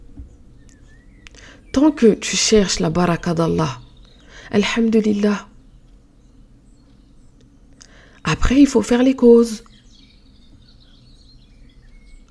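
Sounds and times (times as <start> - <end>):
birds chirping and twittering softly: 0.0 - 12.2
steady low background hum: 0.0 - 12.2
speech: 1.8 - 3.8, 4.5 - 5.5, 8.5 - 9.7.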